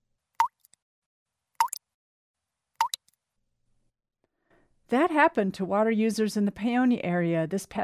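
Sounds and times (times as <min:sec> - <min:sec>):
dry kitchen faucet sputtering with the water shut off: 0:02.8 - 0:03.0
speech: 0:04.9 - 0:07.8.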